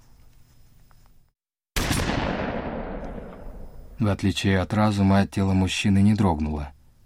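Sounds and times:
rifle shot fired at a wolf echoing: 0:01.8 - 0:04.0
speech: 0:04.0 - 0:06.8.

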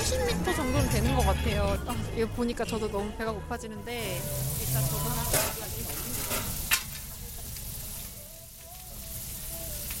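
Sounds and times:
speech: 0:00.1 - 0:06.5
meat and vegetables sizzling on a hot grill: 0:03.8 - 0:09.9.

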